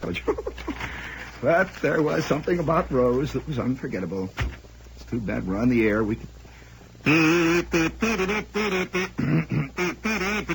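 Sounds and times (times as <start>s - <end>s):
speech: 0.0s - 0.5s, 1.4s - 4.5s, 5.1s - 6.4s, 7.0s - 10.5s
person imitating nasal buzzy duck quacks: 7.0s - 10.5s.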